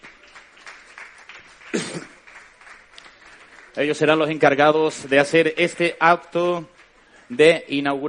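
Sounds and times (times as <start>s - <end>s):
audience applause at an inauguration: 0.0s - 5.7s
cough or shout-like burst: 1.7s - 2.2s
speech: 1.7s - 2.2s, 3.8s - 6.7s, 7.3s - 8.0s.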